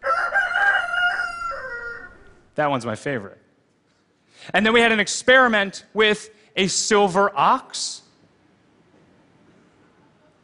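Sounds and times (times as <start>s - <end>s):
rooster crowing: 0.0s - 2.4s
speech: 2.6s - 3.4s, 4.3s - 8.0s.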